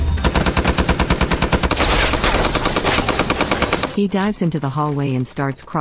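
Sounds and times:
huge bipod-mounted machine gun firing at a house: 0.2s - 4.2s
speech: 4.0s - 5.7s.

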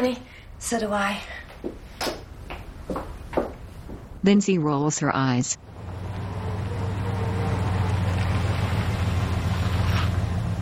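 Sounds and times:
speech: 0.0s - 1.8s, 4.2s - 5.7s
pickup truck engine rumbling: 5.5s - 10.6s
faint hiss of road noise: 5.6s - 10.6s.

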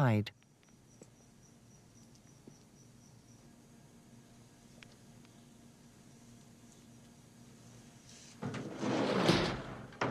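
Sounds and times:
speech: 0.0s - 0.4s
sliding door rumbling and scraping along its track: 8.4s - 10.0s.

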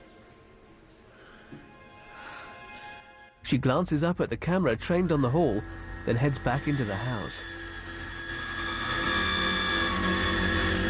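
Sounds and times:
speech: 3.5s - 7.5s
drill bit grinding into a metal combination lock: 4.8s - 10.8s.

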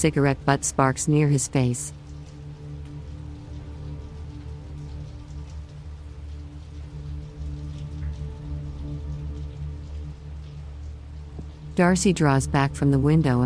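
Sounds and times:
speech: 0.0s - 2.0s, 11.8s - 13.4s
low continuous rumble: 0.0s - 13.4s
steady rain pattering on a hard surface: 0.0s - 13.4s.

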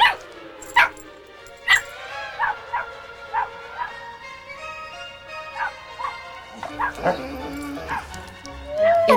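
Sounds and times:
small dog barking in high yips at a window: 0.0s - 1.0s, 1.7s - 4.0s, 5.6s - 8.2s
speech: 7.0s - 7.4s.

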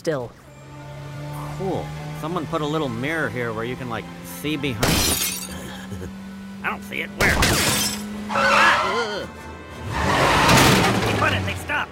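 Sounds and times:
speech: 0.0s - 0.4s, 1.6s - 10.2s, 11.2s - 11.9s
car skidding with a wavering screech: 1.3s - 11.9s
car crashing into a building with smashing wood and shattering glass: 4.8s - 5.6s, 7.3s - 8.0s.

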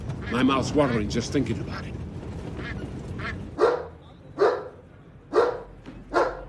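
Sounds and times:
speech: 0.3s - 2.0s
dog barking out of a window: 3.6s - 6.4s.

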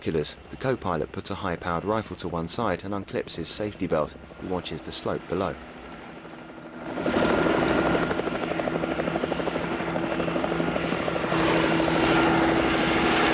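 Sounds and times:
speech: 0.0s - 5.7s
helicopter hovering between two mountain peaks: 0.0s - 13.3s.

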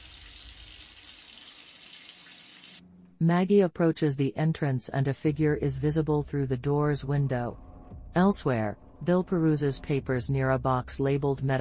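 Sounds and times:
shower water spraying over someone's head: 0.0s - 2.8s
speech: 3.2s - 11.5s.

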